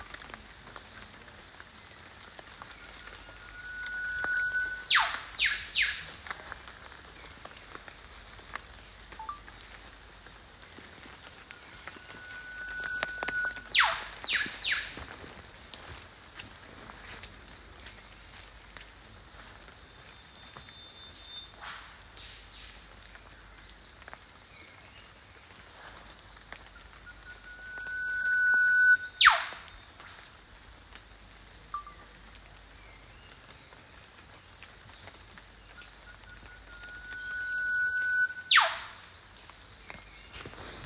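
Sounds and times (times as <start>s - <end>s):
Eastern Whipbird Psophodes olivaceus call: 3.2s - 6.0s, 11.9s - 14.9s, 27.3s - 29.7s, 36.8s - 39.0s.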